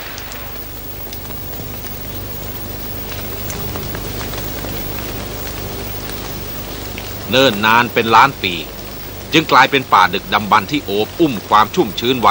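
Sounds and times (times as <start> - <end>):
sharper splashes of rain drops: 0.0 - 2.0
steady rain falling on small plants: 0.0 - 12.3
speech: 7.3 - 12.3.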